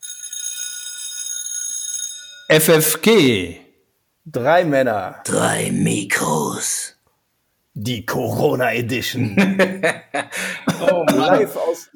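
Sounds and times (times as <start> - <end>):
bell ringing with a bright high tone: 0.0 - 2.8
speech: 2.5 - 3.6, 4.2 - 6.8, 7.8 - 11.9
laughter: 9.2 - 11.9.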